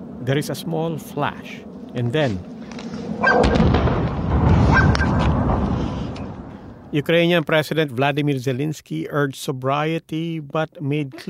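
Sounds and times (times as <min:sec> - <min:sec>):
steady wash of noise: 0:00.0 - 0:11.2
speech: 0:00.2 - 0:04.0, 0:06.9 - 0:11.2
dog barking in a city street in Tehran in the evening: 0:03.2 - 0:03.4.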